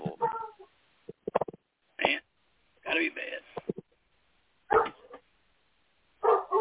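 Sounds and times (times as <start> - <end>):
dog barking: 0.2 - 0.7, 4.7 - 5.2, 6.2 - 6.5.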